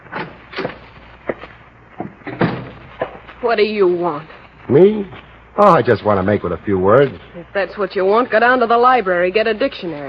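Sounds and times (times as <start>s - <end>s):
wooden door opening with clunks and knocks: 0.1s - 0.8s, 2.0s - 2.8s
speech: 3.4s - 10.0s.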